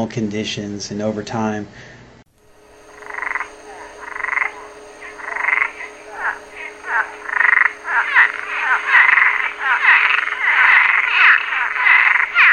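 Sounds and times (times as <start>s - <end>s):
speech: 0.0s - 2.0s
Cuban tree frogs croaking in a chorus: 2.7s - 12.5s.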